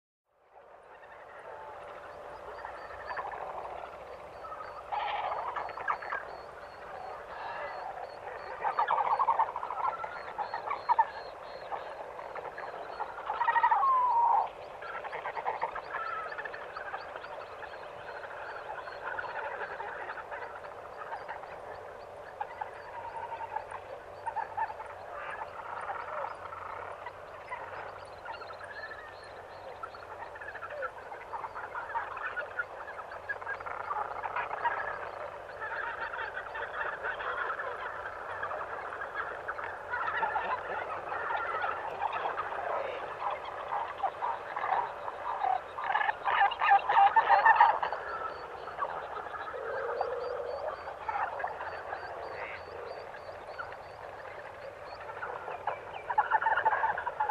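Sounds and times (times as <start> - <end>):
many distant bird calls: 0.6 - 57.2.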